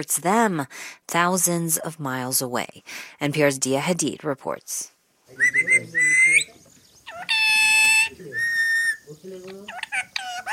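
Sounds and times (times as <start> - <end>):
speech: 0.0 - 6.4
parrot squawking and whistling for food: 5.4 - 10.5.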